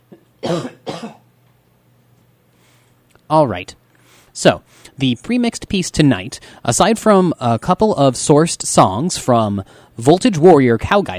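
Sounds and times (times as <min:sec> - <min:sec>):
person with a cold coughing raspily with head turned away: 0:00.1 - 0:01.3
speech: 0:00.5 - 0:00.8, 0:03.3 - 0:03.8, 0:04.4 - 0:11.1.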